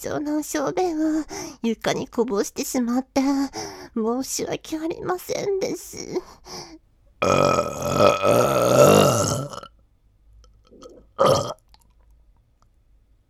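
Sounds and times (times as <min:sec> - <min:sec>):
speech: 0:00.0 - 0:09.7, 0:11.2 - 0:11.6
loud gurgling burp: 0:07.2 - 0:09.7, 0:10.8 - 0:11.6.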